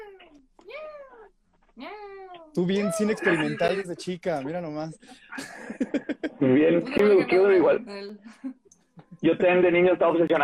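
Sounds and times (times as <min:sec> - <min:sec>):
person imitating a cat meowing: 0:02.6 - 0:03.8
speech: 0:02.6 - 0:08.6, 0:09.2 - 0:10.4
laughter: 0:02.6 - 0:10.4.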